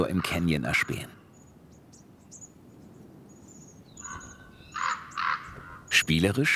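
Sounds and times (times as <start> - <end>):
speech: 0.0 - 1.2, 6.1 - 6.5
common raven croaking calls: 0.0 - 6.5.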